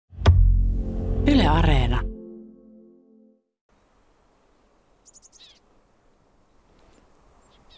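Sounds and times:
speech: 0:01.2 - 0:02.1
steady outdoor noise: 0:03.7 - 0:07.7
tits and Eurasian tree sparrows chirping at a bird feeder in Sipoo: 0:04.8 - 0:07.7.

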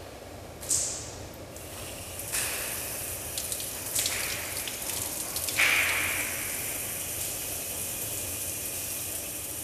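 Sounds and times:
shower running in a swimming hall: 0:00.6 - 0:09.6.

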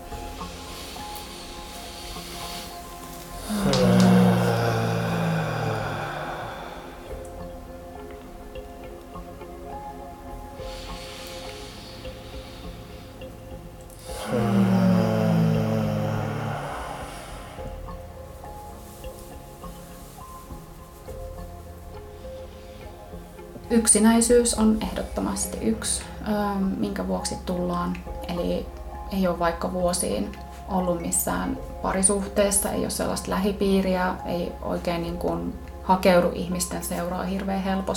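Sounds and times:
slow deep inhalations: 0:00.2 - 0:07.5, 0:10.6 - 0:21.2
speech: 0:23.7 - 0:37.9.

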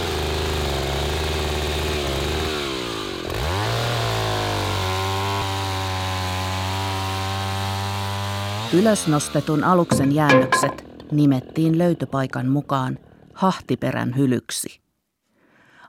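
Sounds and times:
chainsaw cutting through wood: 0:00.0 - 0:09.6
speech: 0:08.7 - 0:14.8.

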